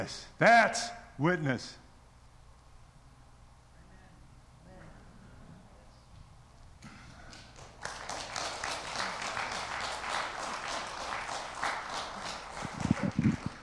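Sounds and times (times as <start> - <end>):
speech: 0.0 - 1.8
audience applause: 6.9 - 13.6.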